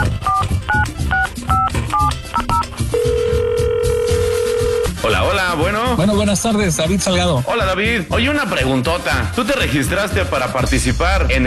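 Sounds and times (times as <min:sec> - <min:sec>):
telephone keypad tones dialling a number: 0:00.0 - 0:05.0
speech: 0:06.3 - 0:11.4.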